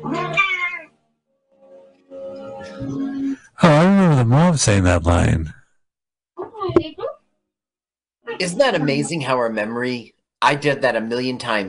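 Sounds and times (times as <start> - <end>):
cat meowing: 0.1 - 1.0
speech: 2.8 - 5.6, 8.4 - 11.6.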